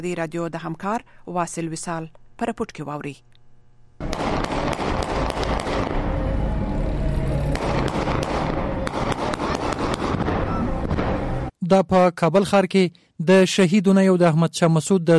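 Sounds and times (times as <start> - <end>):
speech: 0.0 - 3.4, 11.7 - 15.1
celebratory gunfire shot into the air over Kabul city streets: 4.0 - 6.2, 7.5 - 11.3.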